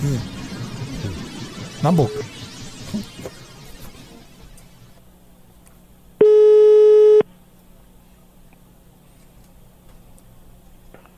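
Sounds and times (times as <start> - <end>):
speech: 0.0 - 0.4, 1.8 - 3.3
steady telephone call tone while redialing: 6.2 - 7.2.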